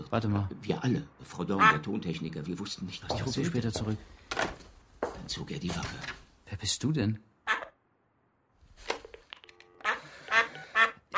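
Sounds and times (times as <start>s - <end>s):
speech: 0.1s - 4.6s, 5.3s - 7.3s
duck quacking inside a room: 1.6s - 1.8s, 7.5s - 7.8s, 9.8s - 11.1s.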